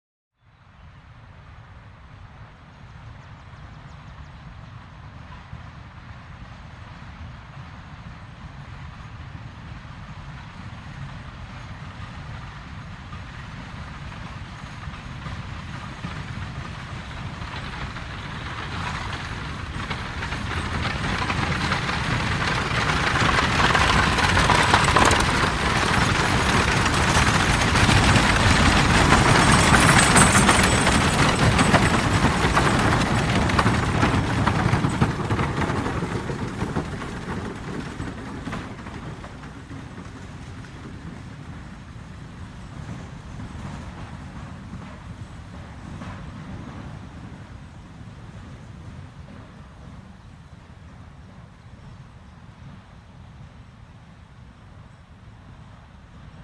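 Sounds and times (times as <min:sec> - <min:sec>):
horse-drawn carriage and four-in-hand wagon: 0:08.8 - 0:53.0.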